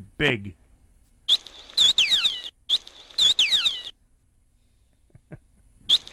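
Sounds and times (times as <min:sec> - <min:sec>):
speech: 0:00.2 - 0:00.6
whale call of high squealing whistles: 0:01.3 - 0:03.9, 0:05.9 - 0:06.1.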